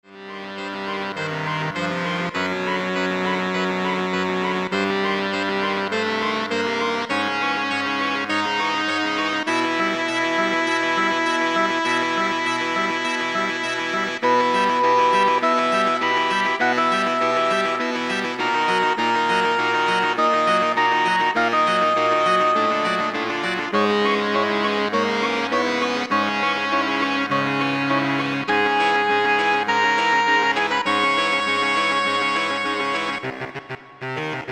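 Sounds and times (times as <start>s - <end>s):
saxophone choir: 0.1s - 34.5s.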